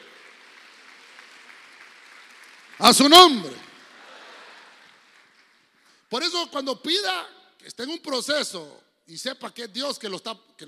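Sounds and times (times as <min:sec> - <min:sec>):
audience clapping hands loudly: 0:00.0 - 0:06.0
speech: 0:02.8 - 0:03.6, 0:06.1 - 0:10.6.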